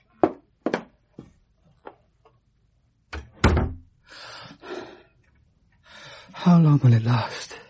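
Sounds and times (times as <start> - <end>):
door being pulled shut with a solid thud: 3.1 - 3.8
speech: 6.4 - 7.4.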